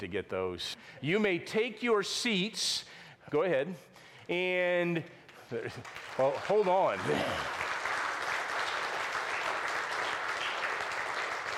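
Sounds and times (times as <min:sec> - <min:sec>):
speech: 0:00.0 - 0:07.6
church audience applauding: 0:05.4 - 0:11.5.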